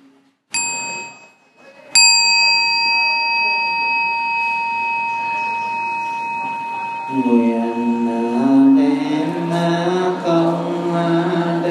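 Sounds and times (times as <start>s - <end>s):
mindfulness bell ringing: 0.5s - 1.4s, 2.0s - 11.6s
speech: 7.2s - 7.6s.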